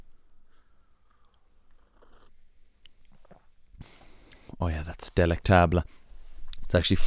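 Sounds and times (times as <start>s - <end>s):
person sipping hot decaffeinated coffee from a mug: 1.0s - 4.5s
gulp: 1.7s - 3.6s
speech: 4.6s - 6.0s, 6.7s - 7.0s.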